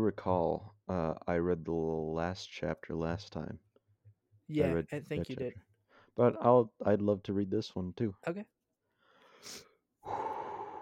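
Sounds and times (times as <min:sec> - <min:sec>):
speech: 0:00.0 - 0:03.7, 0:04.5 - 0:08.6, 0:09.4 - 0:10.4
person exhaling deeply: 0:09.4 - 0:10.7.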